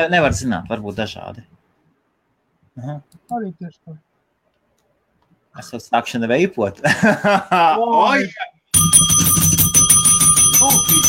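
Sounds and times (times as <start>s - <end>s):
speech: 0.0s - 1.6s, 2.8s - 4.1s, 5.6s - 9.4s, 10.6s - 11.0s
laughter: 6.8s - 8.0s
small bell ringing in a bright metallic trill: 8.8s - 11.0s.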